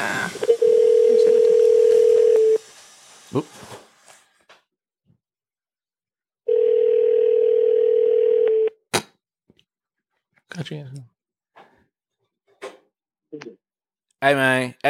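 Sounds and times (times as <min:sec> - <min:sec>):
telephone ringback tone: 0:00.5 - 0:02.6, 0:06.5 - 0:08.8
speech: 0:03.4 - 0:03.6, 0:10.7 - 0:11.2, 0:14.2 - 0:14.8.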